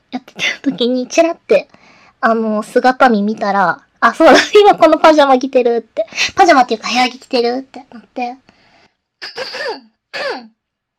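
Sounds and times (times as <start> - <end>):
speech: 0.4 - 8.5, 9.2 - 10.6
person clearing throat: 9.2 - 10.6.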